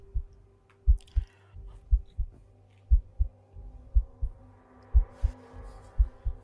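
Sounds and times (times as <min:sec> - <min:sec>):
deep heavy heartbeat-like thumping: 0:00.0 - 0:00.3, 0:00.9 - 0:06.4
low hum: 0:00.0 - 0:06.4.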